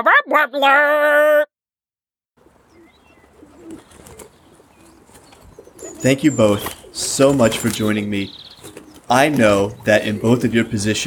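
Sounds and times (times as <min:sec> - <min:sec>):
speech: 0:00.0 - 0:01.4, 0:06.0 - 0:08.4, 0:09.1 - 0:11.0
dove cooing played from a tape: 0:02.4 - 0:11.0
faint scratchy noise: 0:02.4 - 0:11.0.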